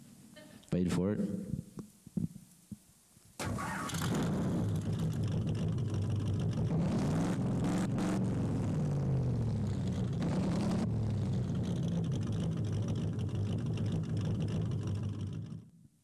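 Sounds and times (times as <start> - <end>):
speech: 0.8 - 1.5
manual car engine roaring as the driver shifts gears: 3.7 - 15.6.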